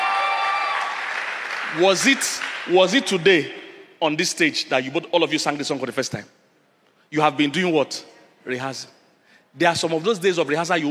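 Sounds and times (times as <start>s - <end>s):
audience clapping in thanks for a group that sang: 0.0s - 3.2s
speech: 1.7s - 6.4s, 7.1s - 10.9s.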